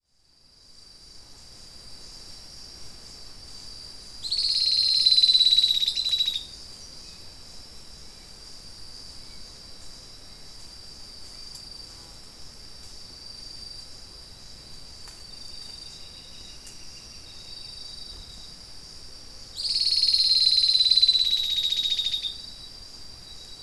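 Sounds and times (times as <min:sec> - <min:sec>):
Sclerurus scansor call: 0:04.2 - 0:06.5, 0:19.6 - 0:22.6.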